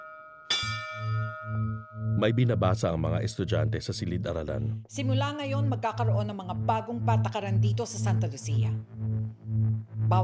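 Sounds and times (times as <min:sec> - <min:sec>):
church bell ringing with a bright metallic clang: 0:00.0 - 0:02.4
low hum: 0:00.5 - 0:10.2
speech: 0:02.2 - 0:10.2.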